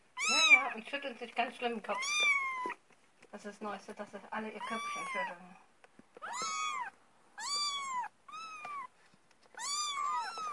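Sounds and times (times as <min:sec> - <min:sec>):
cat meowing: 0:00.2 - 0:00.7, 0:01.9 - 0:02.8, 0:04.6 - 0:05.4, 0:06.2 - 0:08.9, 0:09.5 - 0:10.5
speech: 0:00.8 - 0:02.5, 0:03.3 - 0:06.5.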